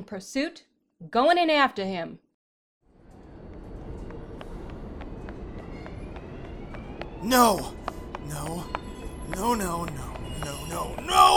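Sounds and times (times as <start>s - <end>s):
speech: 0.0s - 2.2s, 7.2s - 11.3s
train running through a subway station: 3.0s - 11.3s
sharp footsteps slapping quickly in a subway station: 3.5s - 11.3s.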